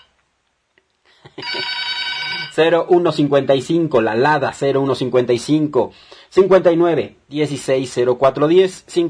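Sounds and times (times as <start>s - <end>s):
telephone ringing in a studio booth: 1.4s - 2.6s
speech: 1.4s - 9.0s.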